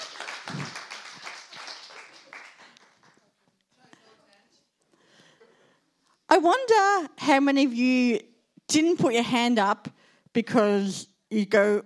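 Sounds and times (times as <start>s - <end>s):
audience clapping and applauding: 0.0s - 3.4s
speech: 6.3s - 11.8s.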